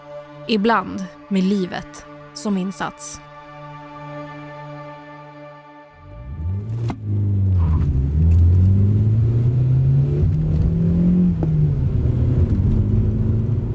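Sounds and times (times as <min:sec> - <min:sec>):
speech: 0:00.5 - 0:03.3
car engine accelerating hard with gas pedal floored: 0:06.0 - 0:13.7.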